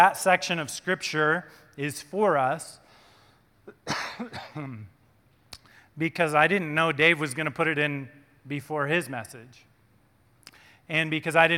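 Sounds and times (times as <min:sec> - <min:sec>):
speech: 0:00.0 - 0:02.8, 0:03.7 - 0:04.9, 0:06.0 - 0:09.7, 0:10.9 - 0:11.5
person coughing from smoke: 0:03.7 - 0:04.9
throat clearing from smoke irritation: 0:03.7 - 0:04.9.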